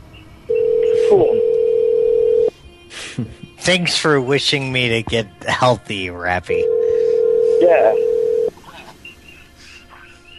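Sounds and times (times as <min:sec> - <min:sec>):
steady telephone dial tone: 0:00.5 - 0:02.5, 0:06.6 - 0:08.5
speech: 0:01.1 - 0:01.5, 0:03.2 - 0:06.7, 0:07.6 - 0:08.1.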